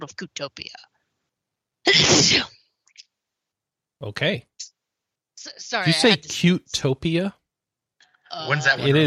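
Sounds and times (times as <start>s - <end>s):
speech: 0.0s - 0.9s, 2.0s - 2.6s, 4.0s - 4.7s, 5.4s - 7.4s, 8.3s - 9.0s
person sneezing: 1.9s - 2.6s.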